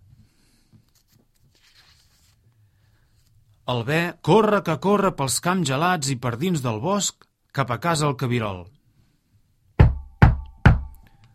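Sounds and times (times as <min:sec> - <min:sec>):
speech: 0:03.7 - 0:08.8
knocking on a door: 0:09.8 - 0:10.9.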